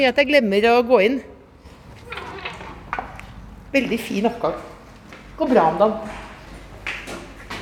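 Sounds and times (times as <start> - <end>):
speech: 0.0 - 1.3, 3.7 - 4.7, 5.4 - 6.2
door in an apartment stairwell being opened: 1.7 - 3.5.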